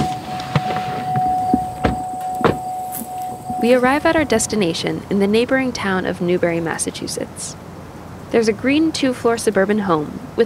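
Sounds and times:
pickup truck door clunks and thumps: 0.0 - 3.2
speech: 3.6 - 7.7, 8.3 - 10.4.

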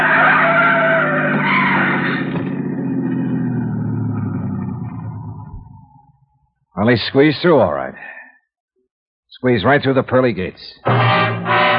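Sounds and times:
car tires skidding during crash: 0.0 - 6.0
speech: 6.8 - 8.1, 9.4 - 11.3.

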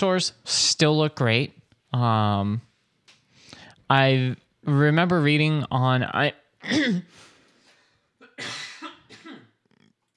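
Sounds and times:
speech: 0.0 - 2.7, 3.9 - 7.3, 8.4 - 8.6
person coughing: 6.6 - 7.2, 8.2 - 9.6.

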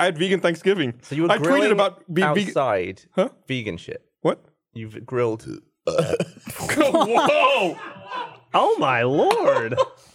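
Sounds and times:
speech: 0.0 - 10.0
loud burp: 5.8 - 6.6
laughter: 6.4 - 10.1.

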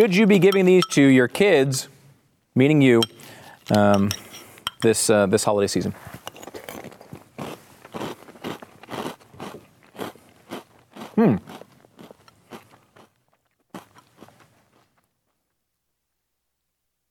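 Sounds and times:
speech: 0.0 - 1.9, 2.6 - 4.2, 4.8 - 6.2, 11.2 - 11.5
crunching and chewing sugar-coated cereal clusters: 6.4 - 15.0.

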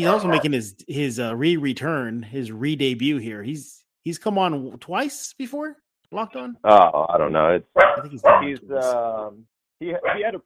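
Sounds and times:
dog barking: 0.0 - 0.5, 7.8 - 8.6, 10.0 - 10.3
speech: 0.0 - 10.4.

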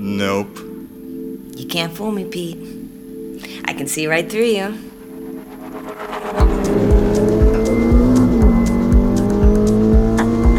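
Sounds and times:
speech: 0.0 - 0.6, 1.6 - 2.8, 3.4 - 4.9
faint high whine: 3.1 - 10.5
1949 car engine with direct drive torque converter running: 5.2 - 10.5.

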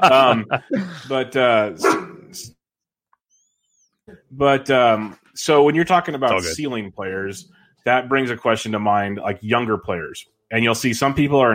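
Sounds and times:
laughter: 0.0 - 1.8
speech: 0.0 - 2.6, 4.3 - 11.5
dog barking and yipping excitedly: 1.8 - 2.2.

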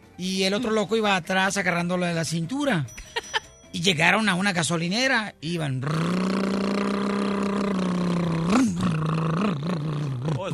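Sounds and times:
speech: 0.2 - 3.0, 3.7 - 6.3
voice imitating a motorcycle engine: 5.8 - 10.5.

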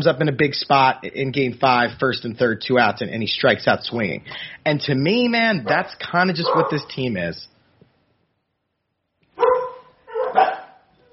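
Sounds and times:
speech: 0.0 - 7.5
dogs barking at someone at the door: 5.6 - 6.8, 9.4 - 11.1.

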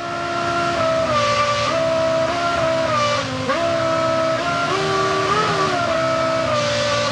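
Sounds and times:
car engine running: 0.0 - 7.1.

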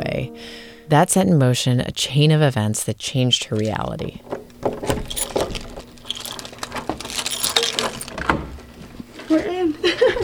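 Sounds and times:
speech: 0.4 - 4.4
bunch of keys jangling: 4.5 - 8.2
laughter: 9.8 - 10.2.

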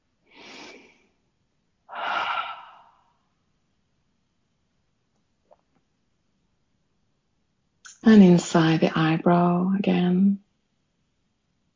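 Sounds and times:
deep breath during a guided relaxation exercise: 0.3 - 1.2, 1.9 - 3.4
speech: 8.0 - 10.4.

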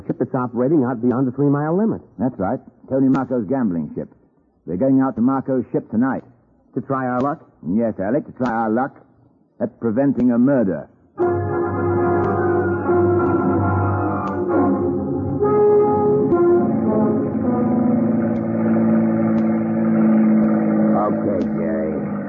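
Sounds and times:
speech: 0.4 - 9.0, 9.6 - 11.5
small boat motor drone heading out toward a gambling ship: 11.2 - 22.2.

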